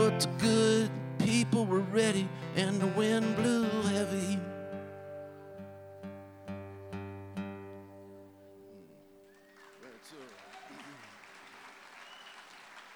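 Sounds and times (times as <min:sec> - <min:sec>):
strummed guitar chords: 0:00.0 - 0:08.8
speech: 0:00.2 - 0:03.5
audience applause: 0:09.2 - 0:12.9
scattered audience voices and whoops: 0:10.2 - 0:11.2.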